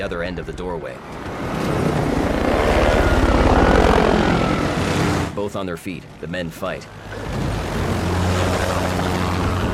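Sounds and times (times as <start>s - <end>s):
speech: 0.0s - 1.8s, 5.4s - 7.4s
helicopter rotor chopping while hovering over a crowded square: 0.4s - 5.4s, 7.2s - 9.7s
dense helicopter engine roar: 1.0s - 5.4s, 7.0s - 9.7s.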